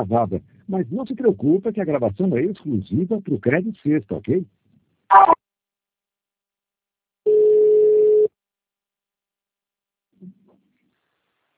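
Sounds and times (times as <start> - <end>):
speech: 0.0 - 5.4
steady telephone tone while a call is being transferred: 5.1 - 5.4, 7.3 - 8.3.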